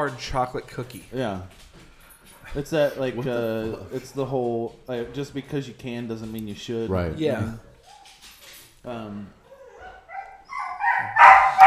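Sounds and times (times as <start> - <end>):
speech: 0.0 - 1.7, 2.5 - 7.7, 8.8 - 9.4
excited dog whining: 7.6 - 8.5, 9.4 - 11.6
dog barking frantically: 9.8 - 11.6.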